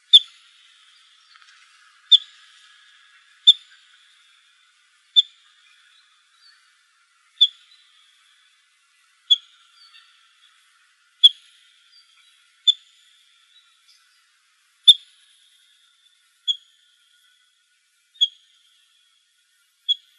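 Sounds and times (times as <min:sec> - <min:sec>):
Emberizid bird calls: 0:00.0 - 0:13.8.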